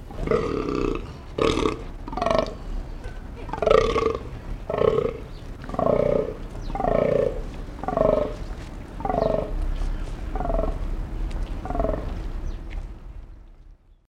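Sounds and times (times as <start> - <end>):
low rumble: 0.0 - 14.0
male fallow deer groaning: 0.1 - 2.7, 3.4 - 10.8.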